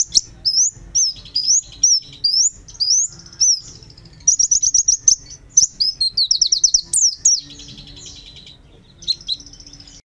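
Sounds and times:
white-eye singing high bright warbled phrases: 0.0 - 10.0.

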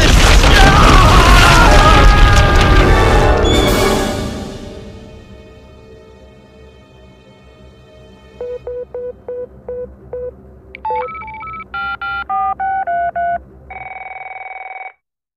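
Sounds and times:
ground trembling and breaking open with roaring rumble and crackling: 0.0 - 4.4.

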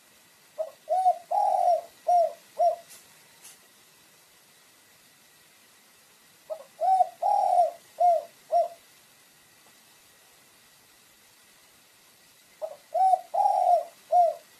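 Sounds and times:
pigeon song of soft hooting coos: 0.6 - 3.0, 6.5 - 8.9, 12.6 - 14.5.

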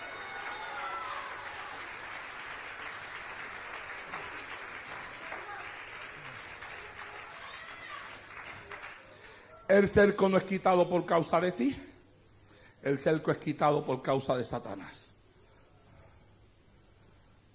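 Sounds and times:
church congregation applauding during a sermon: 0.0 - 9.7
speech: 9.7 - 11.9, 12.8 - 15.0.

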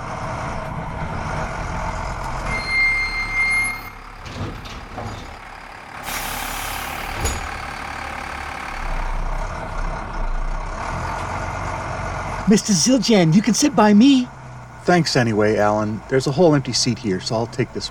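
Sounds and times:
large city bus idling at the stop: 0.0 - 17.9
city bus air-brake hiss: 6.0 - 7.2
speech: 12.5 - 17.9.

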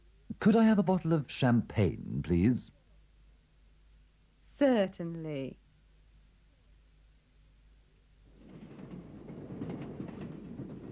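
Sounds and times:
speech: 0.4 - 2.8, 4.6 - 5.6
train running on rails: 8.3 - 10.9.

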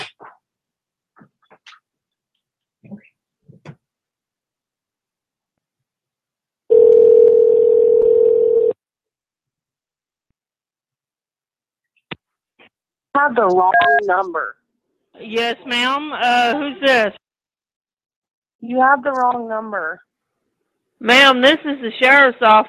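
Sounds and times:
telephone ringback tone on an outgoing call: 6.7 - 8.8
speech: 13.3 - 14.6, 15.2 - 17.2, 18.6 - 20.1, 21.0 - 22.6.

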